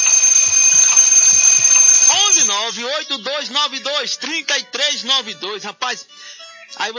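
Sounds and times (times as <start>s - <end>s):
electronic alarm clock buzzing: 0.0s - 2.7s
speech: 2.6s - 6.9s.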